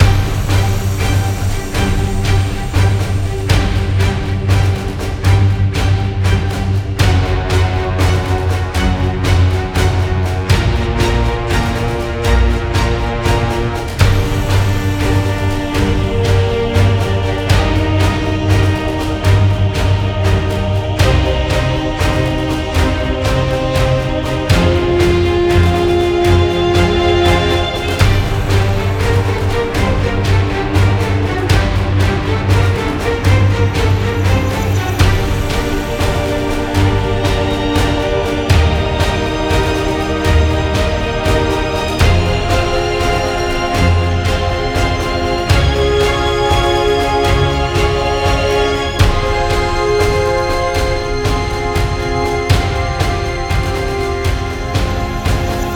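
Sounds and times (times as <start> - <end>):
music for a free spin: 0.0 - 55.7.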